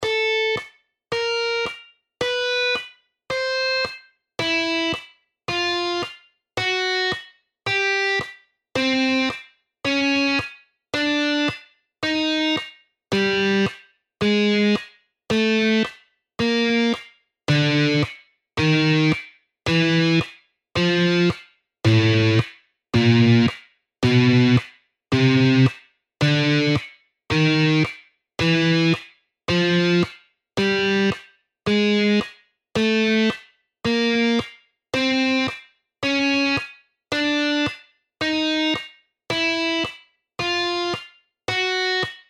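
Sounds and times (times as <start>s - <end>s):
guitar finger exercises: 0.0s - 42.2s.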